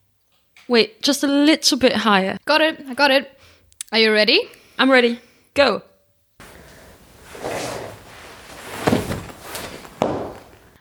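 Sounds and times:
speech: 0.7 - 5.9
shuffling movement: 6.4 - 10.8
loud thump with clattering of person falling off a chair: 8.8 - 10.6.

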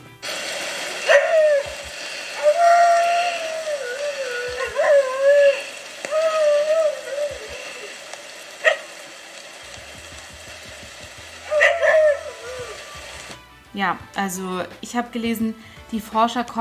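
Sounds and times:
dingoes howling: 1.0 - 10.3, 11.3 - 13.3
speech: 13.8 - 16.5.

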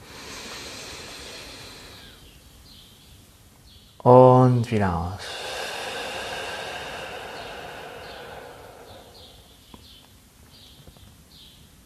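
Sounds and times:
deep inhalation through the nose or mouth: 0.0 - 2.4, 5.2 - 10.0
speech: 4.0 - 5.4.

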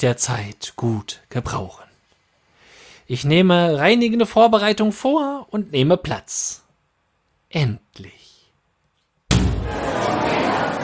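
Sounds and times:
speech: 0.0 - 1.9, 3.1 - 6.6, 7.5 - 8.3
door suddenly banging open: 9.3 - 9.9
laughter: 9.6 - 10.8.

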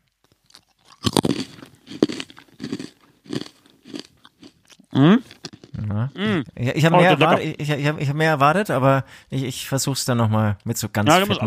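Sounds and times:
crunchy bites into a snack: 0.0 - 5.8
quiet chewing: 0.0 - 6.6
speech: 5.0 - 5.3, 6.1 - 11.4.

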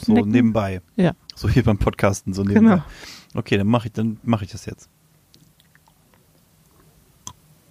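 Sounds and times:
speech: 0.1 - 5.0
biting and chewing crunchy lye salt pretzels: 5.3 - 7.4.

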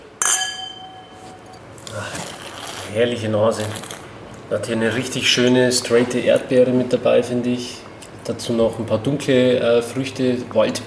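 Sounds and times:
glasses of Pinotage red wine clinking in a toast: 0.2 - 1.7
speech: 2.9 - 3.9, 4.5 - 10.8.

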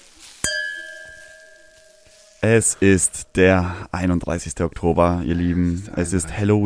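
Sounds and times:
two wine glasses clinking in a toast: 0.4 - 2.4
speech: 2.4 - 6.6.

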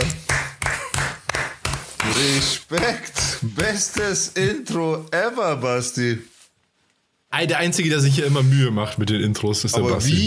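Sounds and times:
single person clapping hands: 0.0 - 4.3
speech: 2.2 - 6.3, 7.3 - 10.2.

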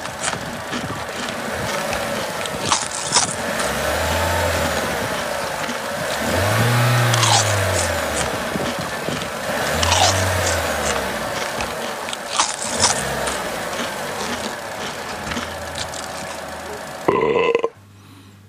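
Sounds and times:
steady rumbling engine-like noise: 0.0 - 18.4
loud brief belch: 17.1 - 17.8.

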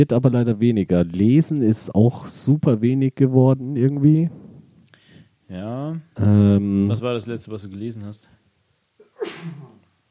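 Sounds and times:
speech: 0.0 - 4.5, 5.5 - 8.4
person sneezing: 9.0 - 9.8.

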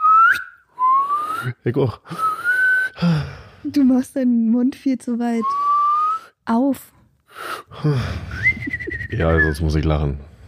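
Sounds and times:
breathy backward whistle drawn in on an inhale: 0.0 - 3.5, 5.4 - 6.4, 7.3 - 9.2
speech: 1.4 - 2.3, 3.0 - 5.7, 6.5 - 8.5, 9.1 - 10.3.

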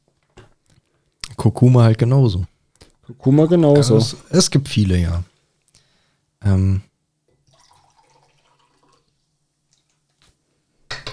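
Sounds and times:
speech: 1.4 - 2.5, 3.1 - 5.3, 6.4 - 6.9
water pouring into a glass: 7.4 - 10.2.

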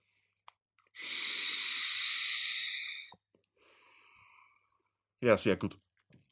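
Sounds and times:
person inhaling e-cigarette vapor: 1.0 - 4.5
breathy exhale of e-cigarette vapor: 1.0 - 4.7
speech: 5.2 - 5.9.

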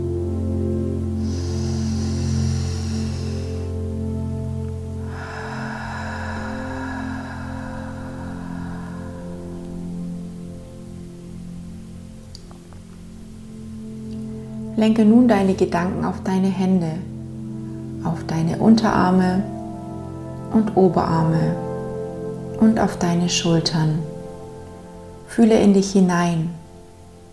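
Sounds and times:
steady soft musical drone: 0.0 - 27.3
long deep breath during a guided relaxation exercise: 1.1 - 11.3, 17.2 - 18.0
speech: 14.8 - 17.1, 18.0 - 19.5, 20.5 - 21.6, 22.6 - 24.1, 25.3 - 26.6.

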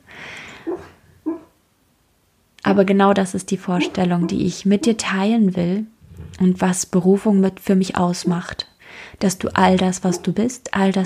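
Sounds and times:
faint breathy noise: 0.0 - 1.6, 5.9 - 6.8, 8.2 - 10.2
speech: 2.7 - 11.0
dreaming dog giving whimpering huffs: 3.8 - 4.9, 9.8 - 10.4.

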